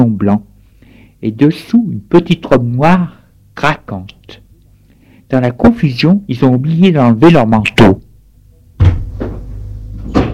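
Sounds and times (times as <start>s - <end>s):
speech: 0.0s - 0.5s, 1.2s - 4.4s, 5.3s - 8.0s
low steady hum: 0.0s - 10.3s
door opening with wooden clunks and thuds: 10.0s - 10.3s.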